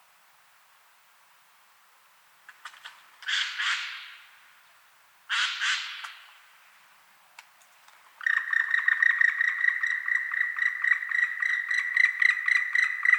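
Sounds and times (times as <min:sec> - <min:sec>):
Dryocopus martius black woodpecker calling: 0:02.6 - 0:04.4, 0:05.3 - 0:06.4, 0:08.2 - 0:13.1.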